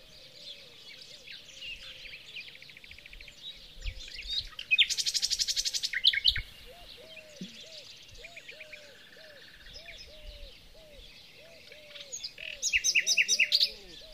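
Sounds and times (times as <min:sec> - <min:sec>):
common nightingale song: 0:00.0 - 0:14.1.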